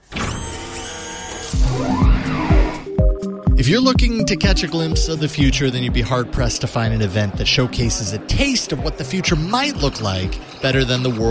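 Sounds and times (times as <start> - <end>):
motorized whir of a smart door lock: 0.0 - 2.9
speech: 3.6 - 11.3.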